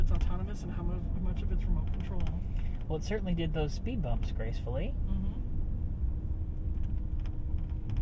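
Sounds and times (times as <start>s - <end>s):
low road rumble inside a moving car: 0.0s - 8.0s
speech: 0.6s - 5.4s
faint brief clicks and rattles: 1.3s - 3.0s, 6.6s - 8.0s.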